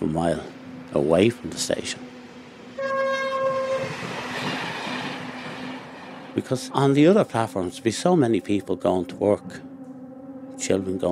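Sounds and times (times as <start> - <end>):
approaching train rumbling and rattling: 0.0 - 9.6
speech: 0.1 - 2.1, 6.4 - 9.7, 10.6 - 11.0
express train whistle blast: 2.8 - 4.0.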